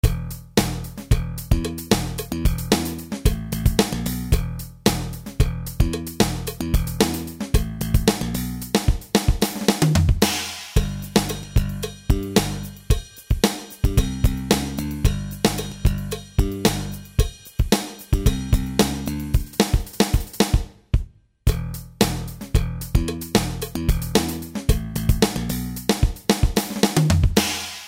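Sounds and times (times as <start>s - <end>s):
drum machine funk bass: 0.0s - 20.6s, 21.5s - 27.6s.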